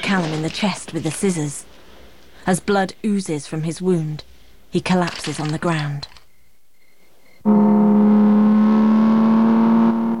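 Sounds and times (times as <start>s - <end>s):
speech: 0.1s - 1.7s, 2.4s - 6.1s, 7.4s - 7.7s
car engine accelerating hard at top speed along a road while overtaking: 7.5s - 10.1s.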